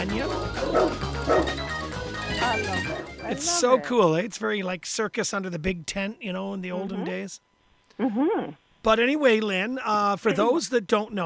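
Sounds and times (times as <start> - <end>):
music with sustained tones: 0.0 - 4.4
speech: 0.1 - 1.6, 2.6 - 11.2
dog barking: 0.7 - 1.5.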